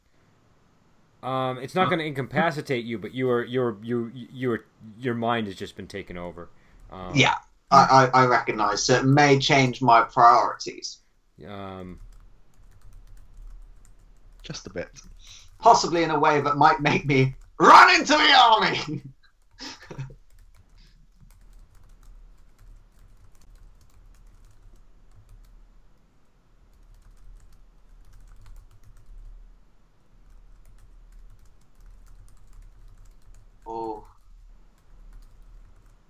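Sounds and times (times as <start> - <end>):
low hum: 0.0 - 36.0
speech: 1.2 - 12.1, 14.4 - 20.1, 33.7 - 34.1
typing on a computer keyboard: 11.8 - 15.6, 19.3 - 26.1, 26.7 - 29.4, 30.2 - 36.0.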